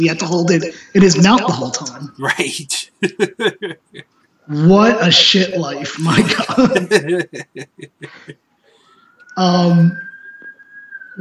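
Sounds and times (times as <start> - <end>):
speech: 0.0 - 8.4, 9.4 - 10.1
laughter: 3.0 - 4.0, 6.0 - 8.4
faint siren wailing: 6.0 - 11.2.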